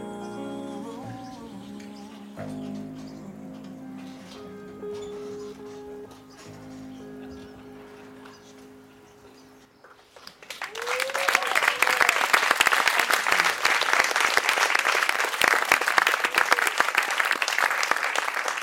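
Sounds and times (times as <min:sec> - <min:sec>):
live audience applauding after a jazz performance: 0:10.2 - 0:18.6
faint voice whooping: 0:10.7 - 0:12.3.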